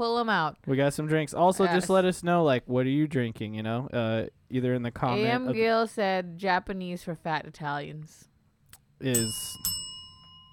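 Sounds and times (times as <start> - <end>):
speech: 0.0 - 8.3, 9.0 - 9.7
small bell being struck: 9.0 - 10.5.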